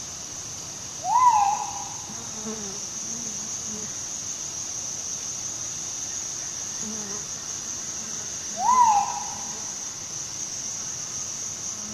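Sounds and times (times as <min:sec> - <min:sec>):
steady high insect hiss: 0:00.0 - 0:11.9
crinkle-collared manucode giving one smooth whistled note: 0:01.1 - 0:01.8, 0:08.6 - 0:09.4.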